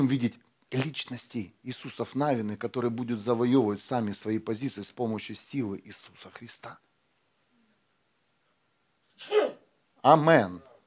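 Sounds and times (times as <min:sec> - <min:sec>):
speech: 0:00.0 - 0:06.9, 0:09.2 - 0:10.7
person sneezing: 0:09.1 - 0:09.7.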